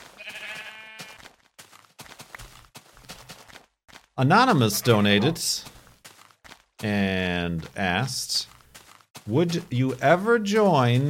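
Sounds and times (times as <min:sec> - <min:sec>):
sheep bleating: 0:00.0 - 0:01.3
speech: 0:04.2 - 0:05.7, 0:06.8 - 0:08.6, 0:09.3 - 0:11.0.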